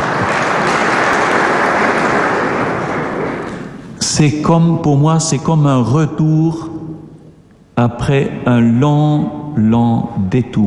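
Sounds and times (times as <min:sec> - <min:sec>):
crowd clapping: 0:00.0 - 0:03.8
speech: 0:04.2 - 0:06.9, 0:07.8 - 0:10.6.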